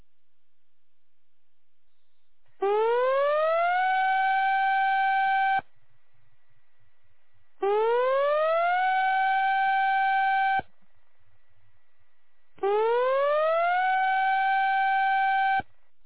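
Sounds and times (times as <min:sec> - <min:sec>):
civil defense major tsunami warning siren: 0:02.6 - 0:05.6, 0:07.6 - 0:10.6, 0:12.6 - 0:15.7.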